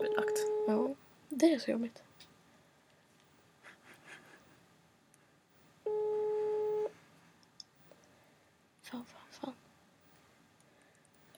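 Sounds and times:
telephone ringback tone while calling someone: 0:00.0 - 0:00.9, 0:05.9 - 0:06.9
speech: 0:00.2 - 0:00.8, 0:01.6 - 0:02.2
breathing: 0:10.6 - 0:11.2.

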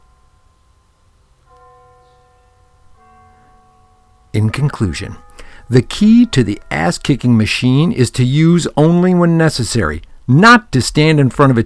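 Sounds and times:
bell strikes: 0:00.0 - 0:09.0
speech: 0:04.4 - 0:11.6.

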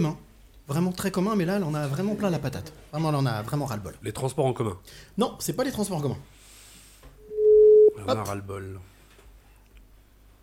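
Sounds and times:
speech: 0:00.0 - 0:06.4, 0:08.0 - 0:08.9
telephone ringing on an outgoing call: 0:07.2 - 0:08.0.

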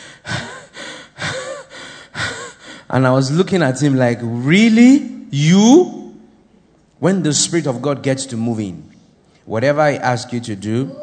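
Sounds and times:
person imitating a man's heavy panting after running: 0:00.0 - 0:02.8
speech: 0:02.9 - 0:06.0, 0:07.0 - 0:08.9, 0:09.5 - 0:11.0.

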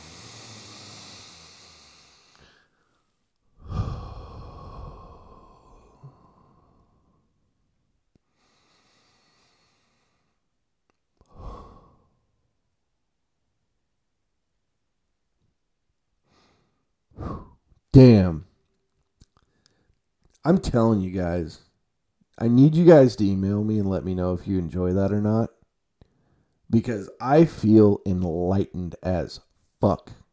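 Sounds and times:
deep slow breaths in a guided breathing exercise: 0:00.0 - 0:07.6, 0:08.2 - 0:10.6, 0:11.2 - 0:12.5, 0:16.2 - 0:17.8, 0:26.0 - 0:26.7
speech: 0:18.0 - 0:18.4, 0:20.4 - 0:21.6, 0:22.4 - 0:25.6, 0:26.7 - 0:30.2.

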